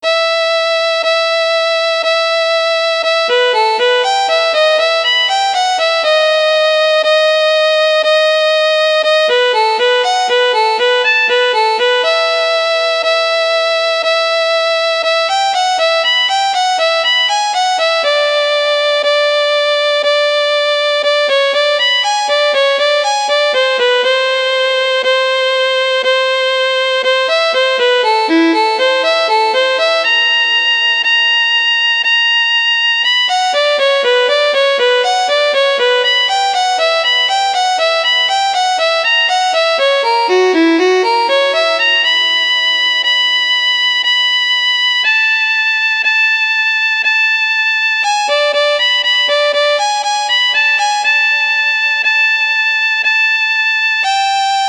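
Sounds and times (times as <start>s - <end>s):
violin solo in G major: 0.0s - 54.6s.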